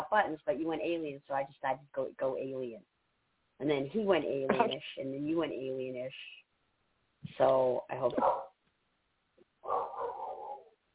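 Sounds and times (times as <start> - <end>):
speech: 0.1 - 3.0, 3.6 - 6.4, 7.2 - 8.5, 9.6 - 10.0
dog barking: 8.2 - 8.6, 9.6 - 10.7.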